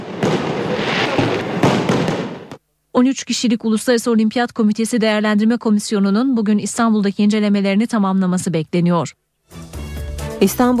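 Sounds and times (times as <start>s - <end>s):
fireworks exploding in a dense barrage: 0.0s - 2.6s
speech: 3.0s - 9.7s, 10.4s - 10.7s.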